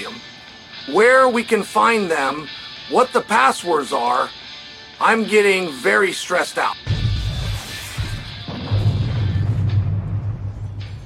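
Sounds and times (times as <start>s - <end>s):
speech: 0.8s - 4.4s, 5.0s - 6.9s
loud deep explosion: 8.4s - 11.0s.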